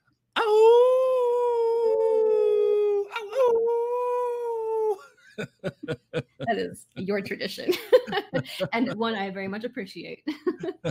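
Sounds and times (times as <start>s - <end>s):
people howling like wolves at the full moon: 0.4s - 5.1s
laughter: 5.0s - 9.2s, 10.3s - 10.8s
speech: 5.4s - 10.8s.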